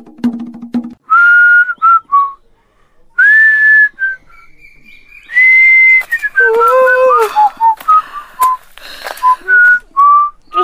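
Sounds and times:
person whistling a tune: 1.1 - 2.4, 3.2 - 4.2, 5.3 - 10.4.

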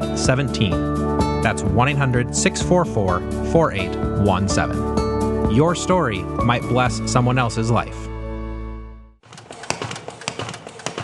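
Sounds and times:
speech: 0.2 - 8.1
paper folding machine running with mechanical clatter: 9.2 - 11.0.

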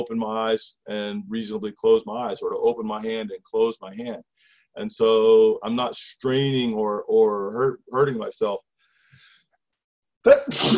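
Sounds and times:
speech: 0.0 - 8.7, 10.2 - 10.7
person sneezing sharply: 10.3 - 10.7.

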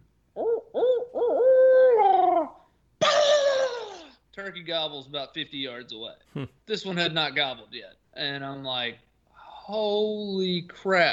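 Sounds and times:
hunter imitating an owl's hooting call with his voice: 0.4 - 4.2
speech: 4.5 - 9.1, 9.7 - 11.1.

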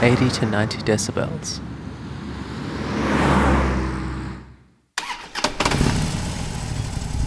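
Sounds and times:
speech: 0.0 - 1.7
engine revving: 3.0 - 7.2
motorbike engine roaring past: 5.0 - 7.2.

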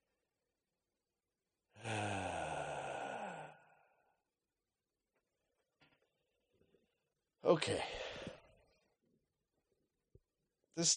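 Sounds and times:
deep sighing breath in and out: 1.7 - 4.2
speech: 7.5 - 8.0, 10.8 - 10.9.

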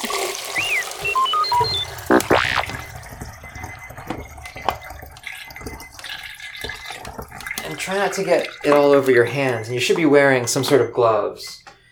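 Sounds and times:
film developer poured out of a small film development tank: 0.0 - 9.1
short electronic timer beeps: 0.4 - 6.2
speech: 7.9 - 11.6.

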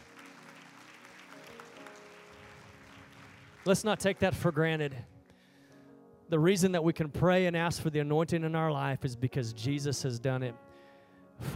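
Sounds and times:
congregation applause: 0.0 - 5.1
speech: 3.6 - 5.1, 6.3 - 10.7, 11.4 - 11.5.

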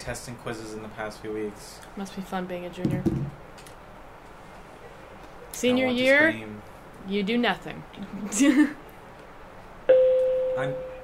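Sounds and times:
speech: 0.0 - 3.4, 5.6 - 8.8, 10.6 - 10.9
electronic school bell ringing: 9.9 - 11.0.

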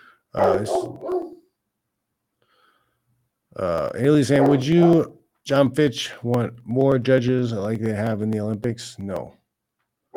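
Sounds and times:
speech: 0.3 - 1.3, 3.6 - 9.4
dog barking outside: 0.4 - 1.5, 4.3 - 5.1.

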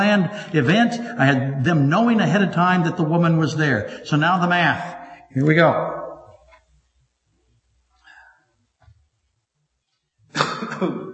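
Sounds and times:
speech: 0.0 - 6.0
short harsh coughs: 10.3 - 11.1.

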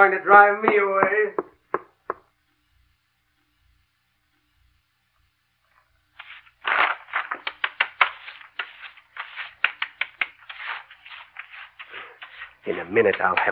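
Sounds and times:
speech: 0.0 - 1.5, 12.9 - 13.5
foot tapping on the floor: 0.6 - 2.3, 6.2 - 13.5.

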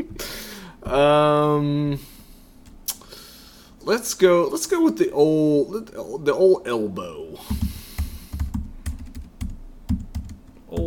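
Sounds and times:
speech: 0.9 - 2.1, 3.9 - 7.6
typing on a computer keyboard: 7.6 - 10.8.

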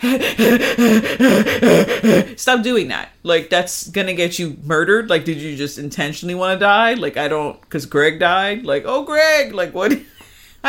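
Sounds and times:
person imitating loud panicked gasping breaths: 0.0 - 2.4
speech: 0.0 - 10.6.

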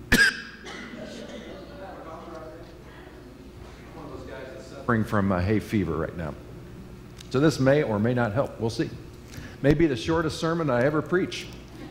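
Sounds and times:
faint room hum: 0.0 - 11.8
person coughing: 0.1 - 1.7
speech: 4.9 - 6.4, 7.3 - 9.0, 9.6 - 11.6.

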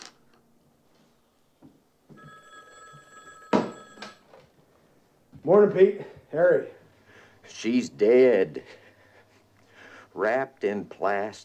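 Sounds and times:
old-fashioned black telephone with metallic bell ringing: 2.1 - 4.4
speech: 5.4 - 6.8, 7.5 - 8.8, 10.2 - 11.4.

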